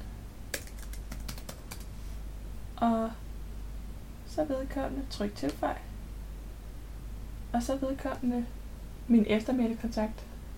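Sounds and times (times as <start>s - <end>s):
low steady hum: 0.0s - 10.5s
typing on a computer keyboard: 0.5s - 1.9s
speech: 2.8s - 3.2s, 4.4s - 5.9s, 7.5s - 10.3s.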